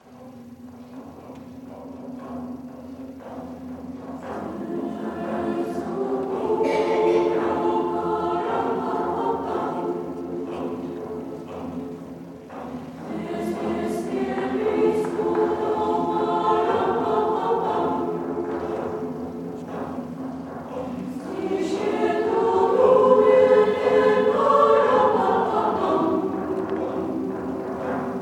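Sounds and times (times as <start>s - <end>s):
drums: 0.0s - 28.1s.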